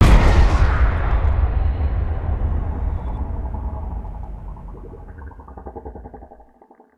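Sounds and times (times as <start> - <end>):
rocket impact: 0.0 - 5.2.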